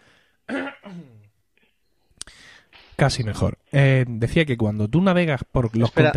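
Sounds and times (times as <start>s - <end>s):
person coughing: 0.5s - 1.3s
breathy exhale: 2.2s - 2.9s
speech: 3.0s - 6.1s.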